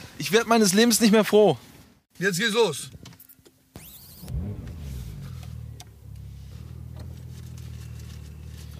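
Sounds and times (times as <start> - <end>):
speech: 0.2 - 3.0
Porsche Turbo S sports car engine starting and pulling away: 3.8 - 8.7.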